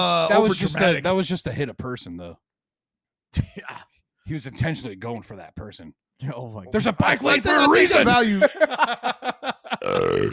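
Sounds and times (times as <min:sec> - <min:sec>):
speech: 0:00.0 - 0:02.5, 0:03.3 - 0:10.3
laughter: 0:06.8 - 0:10.3
long loud rumbling burp: 0:09.8 - 0:10.3.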